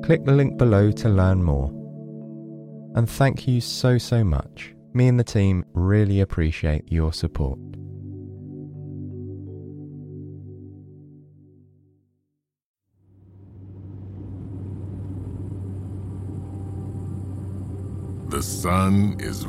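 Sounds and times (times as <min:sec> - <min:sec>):
speech: 0:00.0 - 0:01.8, 0:02.9 - 0:07.8, 0:18.4 - 0:19.4
steady tonal hum: 0:13.1 - 0:19.4
car cruising down an empty highway on a warm bright autumn morning: 0:13.2 - 0:19.4
constant hiss of car tire noise: 0:13.2 - 0:19.4.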